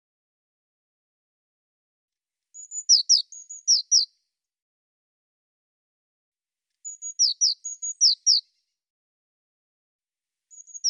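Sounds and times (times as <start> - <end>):
Eurasian blue tit calls: 2.6 - 4.1, 6.8 - 8.4, 10.5 - 10.8.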